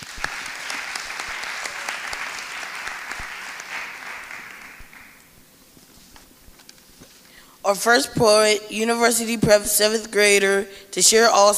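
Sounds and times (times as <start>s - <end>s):
audience applause for middle school students: 0.0s - 5.3s
speech: 7.7s - 11.5s.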